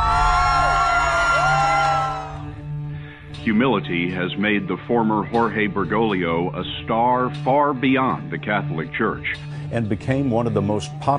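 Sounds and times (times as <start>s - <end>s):
large crowd screaming and cheering as the pope passes: 0.0s - 2.6s
whoops from the crowd: 0.0s - 2.6s
speech: 3.4s - 11.1s.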